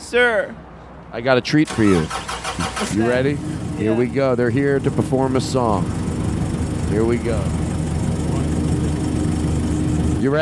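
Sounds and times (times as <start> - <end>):
speech: 0.1 - 6.0, 6.9 - 7.6, 10.2 - 10.4
tractor engine idling: 1.6 - 10.4.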